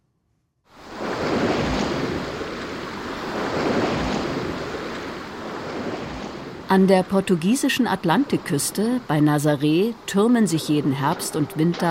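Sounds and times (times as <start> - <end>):
ocean surf waves breaking on shore: 0.7 - 11.8
speech: 6.7 - 11.8.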